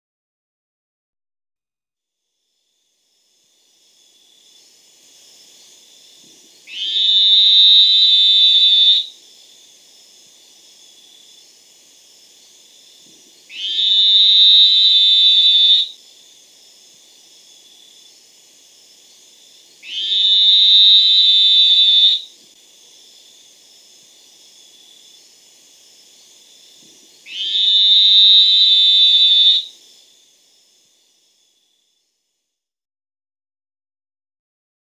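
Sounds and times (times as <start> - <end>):
Elachistocleis ovalis frog: 6.6 - 9.1, 13.5 - 16.0, 19.8 - 22.3, 27.2 - 29.8.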